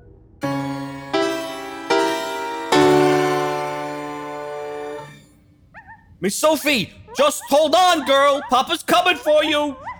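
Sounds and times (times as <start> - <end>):
loud ringing sustained tones: 0.4 - 5.2
speech: 6.2 - 9.9.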